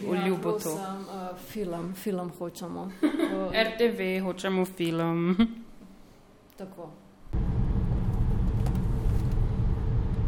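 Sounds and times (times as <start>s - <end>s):
speech: 0.0s - 5.6s, 6.6s - 7.5s
car engine and road rumble heard from inside the cabin: 7.3s - 10.2s.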